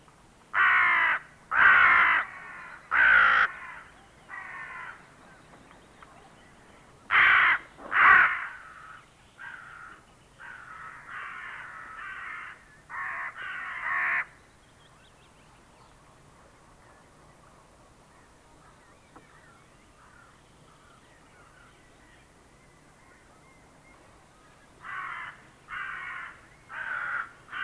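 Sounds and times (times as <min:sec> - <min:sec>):
hooded crow cawing: 0:00.6 - 0:05.0, 0:07.1 - 0:14.3, 0:24.8 - 0:27.6.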